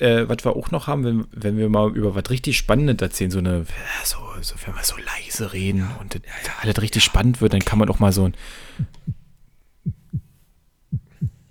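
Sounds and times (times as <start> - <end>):
speech: 0.0 - 9.2
faint hiss: 0.0 - 11.5
deep thumping heartbeat sound effect: 8.8 - 11.5.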